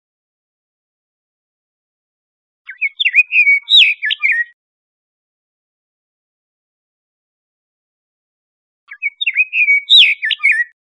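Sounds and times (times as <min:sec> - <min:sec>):
Scott's oriole whistled song in Costa Rica: 0:02.7 - 0:04.6, 0:08.9 - 0:10.8.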